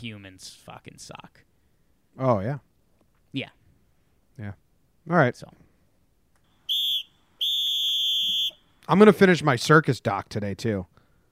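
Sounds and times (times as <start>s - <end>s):
speech: 0.0s - 1.5s, 2.2s - 2.7s, 3.3s - 3.6s, 4.4s - 5.6s, 8.9s - 10.9s
whistle blasts: 6.6s - 8.8s.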